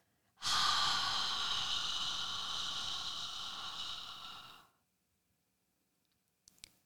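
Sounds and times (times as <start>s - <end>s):
person exhaling slowly: 0.4s - 4.8s.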